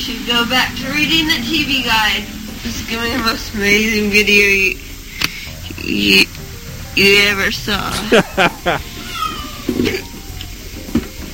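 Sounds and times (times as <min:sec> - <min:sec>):
speech: 0:00.0 - 0:04.9, 0:05.8 - 0:06.4, 0:07.0 - 0:09.0, 0:09.8 - 0:10.1
laughter: 0:07.9 - 0:08.9
pet cat meowing: 0:08.9 - 0:09.9.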